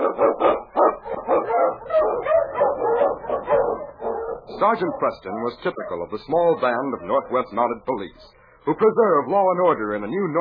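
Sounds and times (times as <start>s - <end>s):
husky sled dog barking and yipping: 0.0s - 7.4s
speech: 4.6s - 10.3s.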